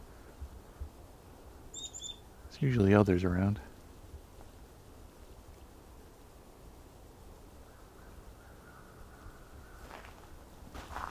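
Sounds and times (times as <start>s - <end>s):
lone chickadee giving thin high-pitched call notes: 1.7s - 2.7s
speech: 2.6s - 3.7s.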